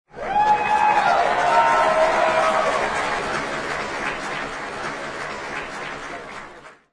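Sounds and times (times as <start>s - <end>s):
big crowd applause: 0.1s - 6.9s
big crowd shouting: 0.2s - 3.4s.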